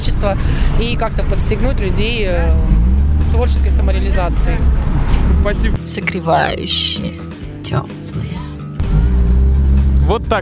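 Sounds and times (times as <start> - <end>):
lowered car engine revving at a car enthusiasts' gathering beside a shopping centre: 0.0 - 5.8, 8.6 - 10.4
speech: 0.2 - 8.3, 10.1 - 10.4.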